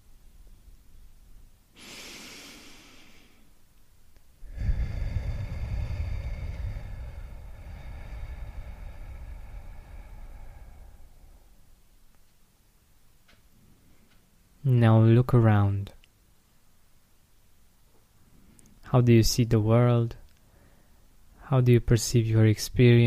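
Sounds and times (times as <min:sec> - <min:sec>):
human inhale through the nose: 0:01.8 - 0:03.5, 0:04.4 - 0:11.8
long soft human exhale through the mouth: 0:01.8 - 0:03.5, 0:04.4 - 0:11.8
speech: 0:14.7 - 0:16.0, 0:18.9 - 0:20.2, 0:21.5 - 0:23.0.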